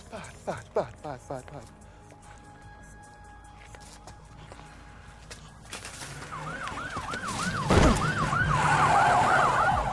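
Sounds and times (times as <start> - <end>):
speech: 0.1 - 1.8
police car siren yelping in rising sweeps: 6.2 - 9.9.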